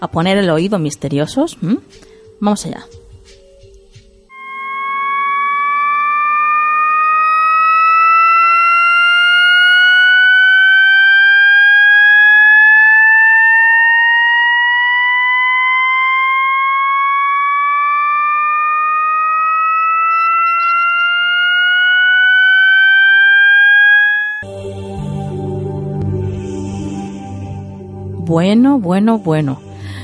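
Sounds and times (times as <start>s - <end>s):
speech: 0.0s - 3.0s, 28.4s - 29.7s
computer-generated electronic tone that seems to rise continuously: 4.3s - 28.0s.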